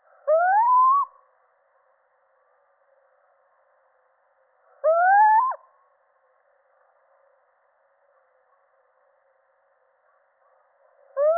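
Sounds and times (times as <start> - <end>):
male little owl rising mewing hoot: 0.3 - 1.2, 4.8 - 5.6, 11.2 - 11.3.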